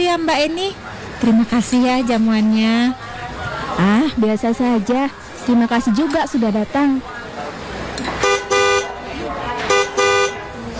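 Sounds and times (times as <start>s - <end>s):
speech: 0.2s - 3.1s, 3.8s - 7.1s
loud car horn honking: 8.2s - 9.0s, 9.6s - 10.6s.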